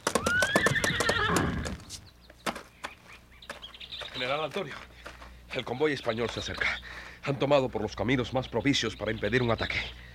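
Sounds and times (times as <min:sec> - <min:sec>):
horse whinnying: 0:00.0 - 0:01.9
hoofbeats of horse galloping with rider: 0:00.0 - 0:05.3
speech: 0:04.2 - 0:04.9, 0:05.5 - 0:10.0.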